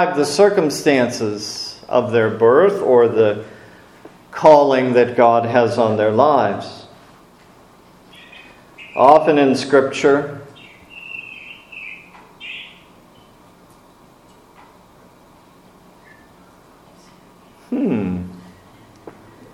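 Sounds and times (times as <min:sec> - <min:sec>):
speech: 0:00.0 - 0:03.5, 0:04.4 - 0:06.8, 0:09.0 - 0:10.4
low hiss: 0:00.0 - 0:19.5
birds chirping: 0:07.7 - 0:13.7, 0:15.8 - 0:17.9.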